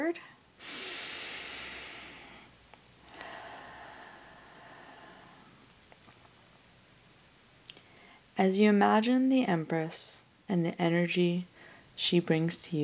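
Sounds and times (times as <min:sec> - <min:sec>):
speech: 0:00.1 - 0:00.3, 0:08.4 - 0:12.8
deep breathing during a short meditation: 0:00.6 - 0:05.7.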